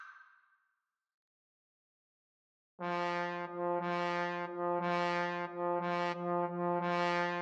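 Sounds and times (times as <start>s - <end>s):
trombone trio playing: 2.8s - 7.4s.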